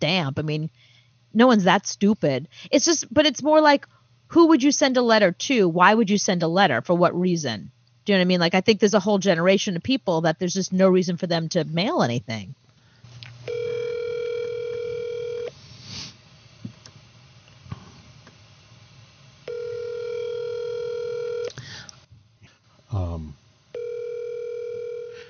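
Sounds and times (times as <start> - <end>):
speech: 0.0 - 12.6
outgoing call electronic ringback tone: 13.5 - 15.5, 19.5 - 21.5, 23.8 - 25.2.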